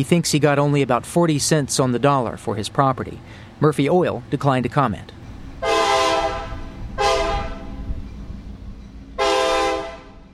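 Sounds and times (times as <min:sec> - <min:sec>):
speech: 0:00.0 - 0:05.2
low rumble of a passing train: 0:00.0 - 0:10.3
train horn blasts: 0:05.6 - 0:07.9, 0:09.2 - 0:10.3.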